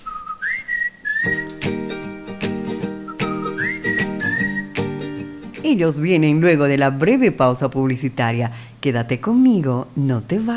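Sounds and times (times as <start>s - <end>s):
bright whistled melody with sliding notes: 0.0s - 5.7s
speech: 5.7s - 10.5s.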